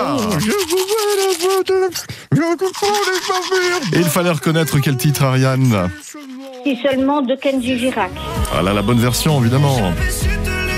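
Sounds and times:
electric toothbrush buzzing out a simple melody: 0.0s - 1.6s, 2.6s - 7.0s
speech: 0.4s - 10.3s.

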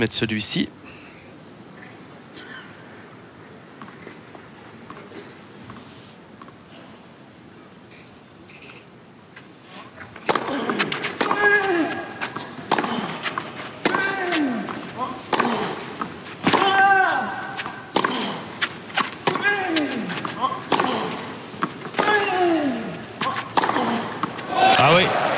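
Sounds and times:
speech: 0.0s - 1.0s
voices: 9.7s - 25.3s
tennis racket striking the ball in a rally: 10.2s - 24.8s.

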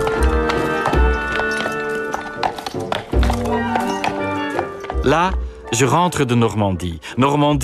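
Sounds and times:
horse hooves clip-clopping: 0.0s - 5.9s
sustained tonal musical backdrop: 0.0s - 7.6s
speech: 5.1s - 7.6s.

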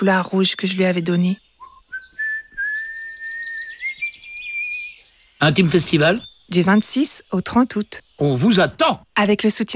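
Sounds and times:
speech: 0.0s - 1.5s, 5.4s - 9.7s
person whistling a slowly rising tone: 1.6s - 4.1s.

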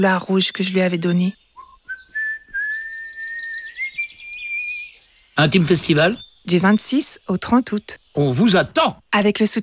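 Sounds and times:
speech: 0.0s - 1.4s, 5.4s - 9.6s
man whistling a slow tune: 1.6s - 4.8s.

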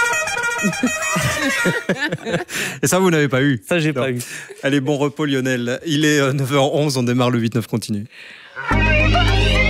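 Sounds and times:
car horn honking: 0.0s - 2.0s
laughter: 0.6s - 2.9s
speech: 0.6s - 9.5s.

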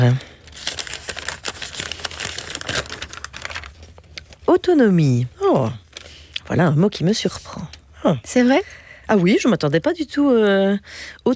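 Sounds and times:
speech: 0.0s - 0.7s, 4.5s - 5.8s, 6.5s - 11.3s
small paper slip crinkling as it is picked up and unfolded: 0.0s - 4.7s.

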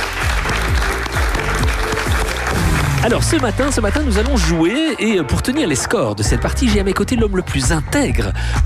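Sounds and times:
live audience of local residents applauding: 0.0s - 5.9s
speech: 3.0s - 8.6s.

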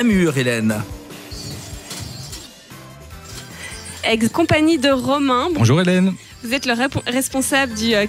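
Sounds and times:
speech: 0.0s - 1.0s, 4.0s - 8.0s
small birds chirping and twittering outdoors: 1.1s - 8.0s.

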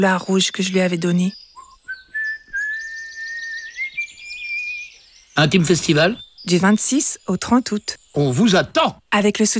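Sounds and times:
speech: 0.0s - 1.4s, 5.4s - 9.5s
person whistling a tune: 1.6s - 4.1s.

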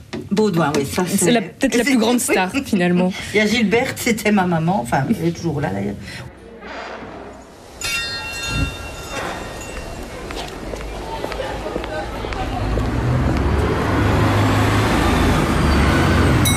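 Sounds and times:
speech: 0.3s - 6.3s
road traffic in a village near Soigny in Hainaut: 7.4s - 16.5s
bus engine rumbling in a village near Soigny in Hainaut: 7.6s - 16.5s.

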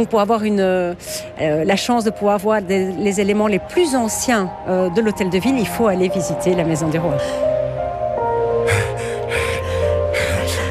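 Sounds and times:
speech: 0.0s - 7.5s
out-of-breath panting after climbing stairs to the first floor: 8.6s - 10.6s.

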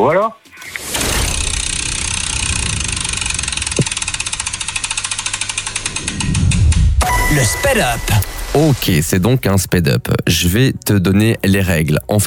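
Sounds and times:
speech: 0.0s - 0.8s, 7.4s - 12.2s
large prize wheel clapper ticking in a radio studio: 1.2s - 7.6s.

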